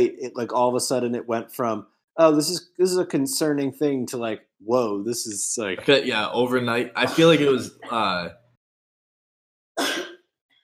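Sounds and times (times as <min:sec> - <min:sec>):
speech: 0:00.0 - 0:08.4
person coughing: 0:07.0 - 0:07.6, 0:09.8 - 0:10.3.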